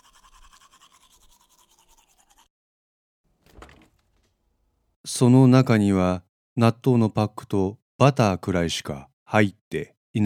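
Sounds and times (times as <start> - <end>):
toothbrush scrubbing as someone brushes their teeth: 0.0 - 2.5
louder clunk: 3.3 - 4.5
speech: 5.1 - 10.2.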